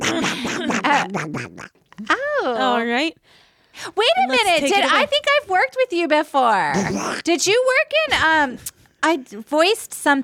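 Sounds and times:
nasal duck quacking: 0:00.0 - 0:01.7
speech: 0:00.9 - 0:10.2.

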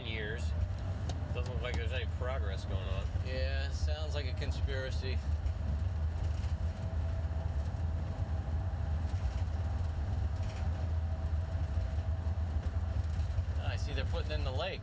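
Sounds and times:
bulldozer driving and moving dirt at a construction site: 0:00.0 - 0:14.8
speech: 0:02.0 - 0:05.4.

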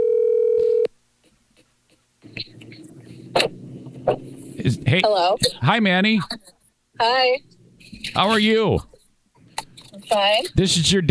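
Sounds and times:
loud steady telephone dial tone: 0:00.0 - 0:00.9
speech: 0:04.1 - 0:07.5, 0:08.2 - 0:08.9, 0:10.1 - 0:11.1.

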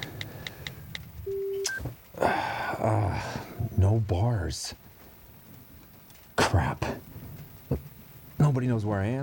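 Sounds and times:
longer steady tone: 0:01.2 - 0:02.5
short electronic phone keypad beeps while texting a message: 0:01.3 - 0:01.8
speech: 0:02.2 - 0:04.8, 0:06.5 - 0:07.0, 0:08.5 - 0:09.2.

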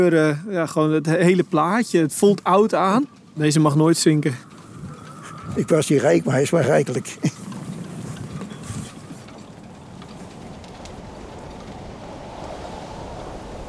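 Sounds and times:
speech: 0:00.0 - 0:04.5, 0:05.5 - 0:07.4
waves sloshing and lapping around an anchored boat: 0:02.8 - 0:13.6
steady wind rushing over churning water around an anchored boat: 0:03.6 - 0:09.2, 0:09.8 - 0:13.6.

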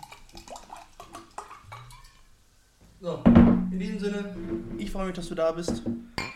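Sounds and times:
water pouring into a glass: 0:00.0 - 0:02.3
speech: 0:03.0 - 0:06.3
faint glass clink: 0:06.2 - 0:06.3.

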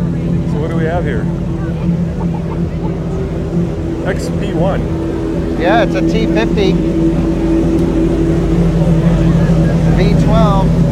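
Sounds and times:
V12 supercar engine idling and revving: 0:00.0 - 0:10.8
faint voices murmuring: 0:00.0 - 0:10.8
speech: 0:01.0 - 0:02.0, 0:04.1 - 0:05.0, 0:05.6 - 0:07.9, 0:10.0 - 0:10.8.

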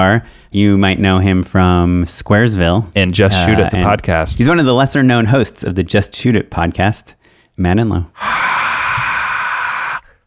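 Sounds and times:
speech: 0:00.0 - 0:08.5
crowd sound effect resembling heavy breathing: 0:08.2 - 0:10.2.

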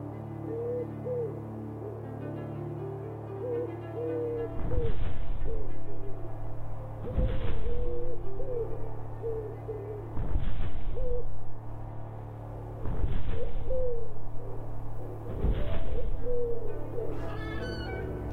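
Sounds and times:
steady hum: 0:00.0 - 0:18.3
owl hooting in soft low calls: 0:00.4 - 0:02.0, 0:03.4 - 0:06.0, 0:07.0 - 0:11.4, 0:13.2 - 0:18.3
rushing flapping noise: 0:04.6 - 0:08.8, 0:10.1 - 0:17.4.

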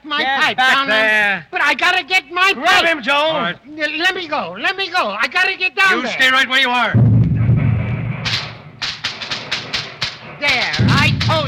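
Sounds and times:
speech: 0:00.1 - 0:07.1, 0:10.4 - 0:11.4
low rumble: 0:07.0 - 0:08.3, 0:10.8 - 0:11.4
fireworks going off in the cellar: 0:07.0 - 0:11.4.

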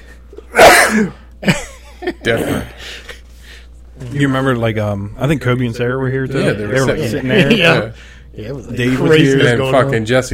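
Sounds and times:
single loud sneeze: 0:00.5 - 0:01.3
speech: 0:00.9 - 0:03.0, 0:04.0 - 0:10.3.

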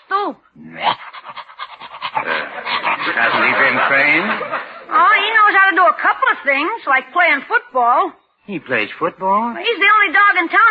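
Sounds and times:
speech: 0:00.2 - 0:00.9, 0:03.2 - 0:10.7
Great Dane panting: 0:00.9 - 0:04.5
laughter: 0:02.2 - 0:05.5.

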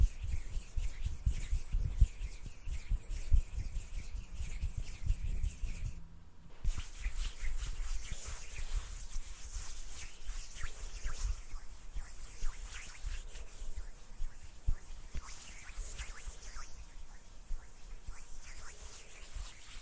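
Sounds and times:
faint low rumble: 0:00.0 - 0:09.4
palms rubbing and brushing together: 0:00.0 - 0:19.8.

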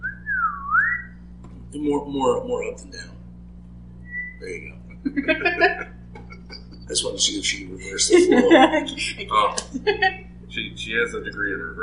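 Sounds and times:
sliding whistle tone: 0:00.0 - 0:01.2, 0:04.0 - 0:04.8
faint low hum: 0:00.0 - 0:11.8
speech: 0:01.7 - 0:03.2, 0:04.4 - 0:05.9, 0:06.9 - 0:11.8
laughter: 0:04.4 - 0:11.8.

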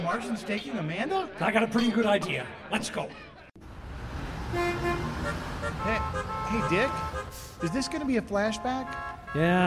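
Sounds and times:
speech: 0:00.1 - 0:03.3, 0:04.5 - 0:09.6
road traffic rumble: 0:03.6 - 0:09.6
car horns honking in traffic: 0:04.5 - 0:09.6.

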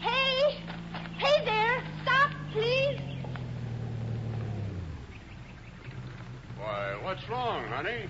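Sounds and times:
faint bird chirps: 0:00.0 - 0:03.7, 0:04.8 - 0:06.8
vehicle engine rumble settling to idle: 0:00.0 - 0:08.0
speech: 0:07.2 - 0:08.0.

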